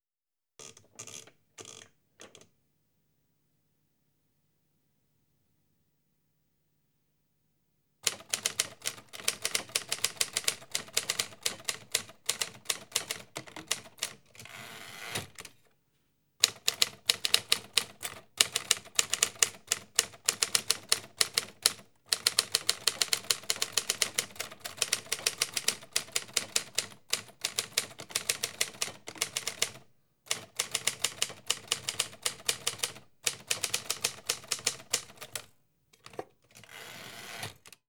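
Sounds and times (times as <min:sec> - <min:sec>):
mechanical typewriter typing: 0:08.0 - 0:14.5, 0:16.4 - 0:37.8.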